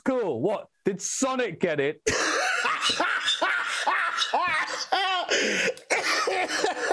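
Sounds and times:
speech: 0.0s - 6.9s
person with COVID coughing: 2.1s - 3.0s, 4.6s - 6.9s
person with COVID laughing: 2.1s - 6.9s.

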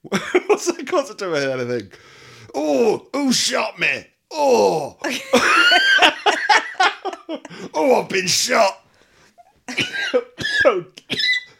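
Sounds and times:
speech: 0.1s - 8.8s, 9.7s - 11.3s
laughter: 5.0s - 7.7s
harsh raspy coughs: 9.7s - 11.5s.

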